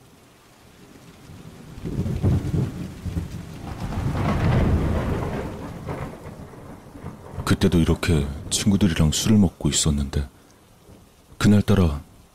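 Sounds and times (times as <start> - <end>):
steady rain pouring at night: 0.0 - 12.3
deep rolling thunder: 1.2 - 9.8
speech: 7.6 - 10.4, 11.4 - 12.1.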